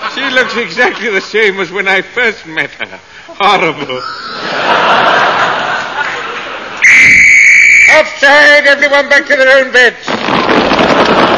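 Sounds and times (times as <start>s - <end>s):
laughter: 0.0s - 1.5s, 3.4s - 6.8s
speech: 0.3s - 5.2s, 7.9s - 11.3s
danger whistle warning of blasting in a tunnel: 6.8s - 8.2s.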